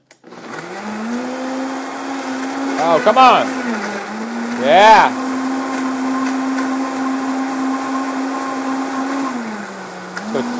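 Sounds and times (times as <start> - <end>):
kitchen blender whirring: 0.0 - 10.5
person exclaiming over the blender noise: 2.7 - 3.6, 4.6 - 5.2
speech: 2.8 - 3.6, 4.6 - 5.2.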